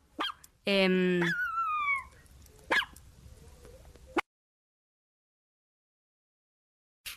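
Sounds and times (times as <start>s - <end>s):
dog barking: 0.2s - 0.4s, 2.7s - 3.0s
speech: 0.7s - 1.4s
dog whimpering: 1.2s - 2.1s.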